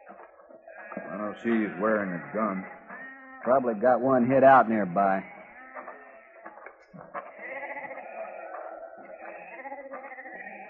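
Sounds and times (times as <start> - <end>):
several sheep bleating: 0.0 - 10.6
speech: 1.1 - 2.8, 3.4 - 5.3.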